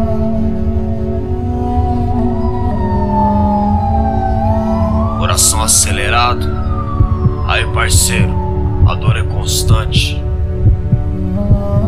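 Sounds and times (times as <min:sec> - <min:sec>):
low rumbling drone: 0:00.0 - 0:11.8
police siren wailing: 0:01.3 - 0:10.3
speech: 0:05.4 - 0:06.6, 0:07.5 - 0:10.2.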